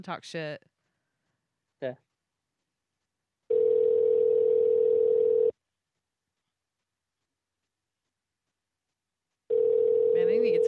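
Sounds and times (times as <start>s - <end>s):
speech: 0.0s - 0.7s, 1.8s - 2.0s, 10.2s - 10.6s
telephone ring tone: 3.5s - 5.5s, 9.5s - 10.6s.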